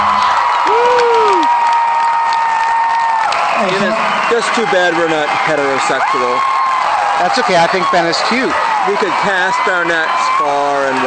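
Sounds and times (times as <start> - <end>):
concert crowd applause: 0.0 - 11.0
large concert crowd cheering for the performer: 0.0 - 11.0
person whooping: 0.3 - 3.3
speech: 4.4 - 6.6, 7.2 - 11.0.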